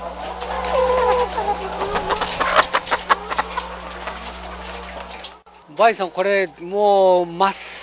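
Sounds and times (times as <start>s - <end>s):
chickens clucking and squawking in a poultry house on a chicken farm: 0.0s - 7.8s
steady low hum: 1.4s - 5.4s
speech: 5.8s - 7.7s.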